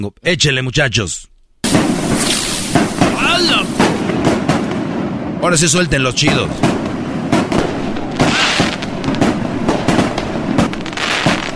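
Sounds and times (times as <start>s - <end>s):
speech: 0.0s - 2.3s, 3.2s - 4.4s, 5.4s - 6.8s
steady noisy outdoor background: 0.0s - 11.5s
rising whistle from a rocket: 1.6s - 4.3s, 8.1s - 8.9s
firecracker rockets bursting in sharp bangs: 1.6s - 11.5s.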